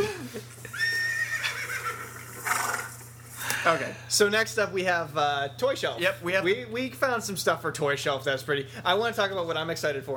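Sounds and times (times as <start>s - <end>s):
horse whinnying: 0.7s - 3.0s
speech: 3.6s - 10.1s.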